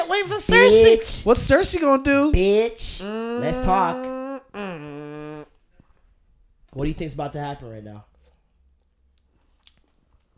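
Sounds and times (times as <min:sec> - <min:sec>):
speech: 0:00.1 - 0:04.2, 0:06.8 - 0:08.1
wet chewing against a microphone: 0:09.2 - 0:10.3.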